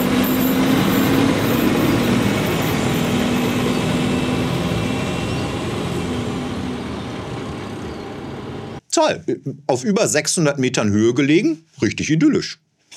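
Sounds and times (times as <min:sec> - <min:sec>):
regional train engine rumbling as it pulls away from a station: 0:00.0 - 0:08.8
speech: 0:09.0 - 0:12.6.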